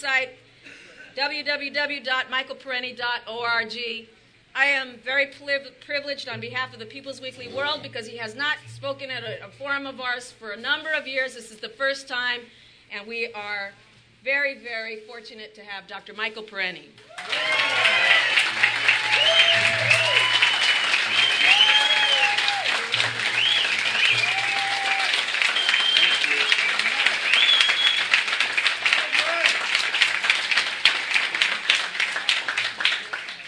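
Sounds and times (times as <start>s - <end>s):
speech: 0.0s - 0.5s, 1.2s - 17.8s
scattered whoops and voices in an audience: 17.1s - 25.2s
audience applause at a forum welcoming a speaker: 17.1s - 33.4s.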